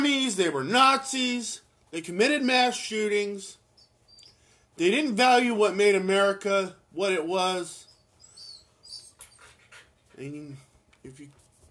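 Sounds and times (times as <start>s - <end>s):
speech: 0.4s - 3.6s, 4.8s - 7.9s, 10.2s - 11.4s
dog whimpering in short rising whines: 3.8s - 4.4s, 7.8s - 10.3s
faint dog panting: 7.9s - 10.8s.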